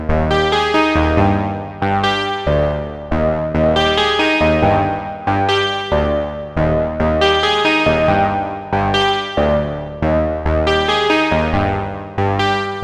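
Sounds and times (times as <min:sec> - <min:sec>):
ASM Hydrasynth synth harp arpeggio: 0:00.1 - 0:12.7.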